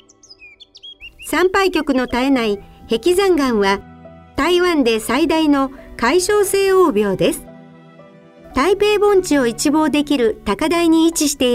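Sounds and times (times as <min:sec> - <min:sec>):
birds chirping in a natural setting: 0:00.0 - 0:03.7
speech: 0:01.4 - 0:07.5, 0:08.6 - 0:11.5.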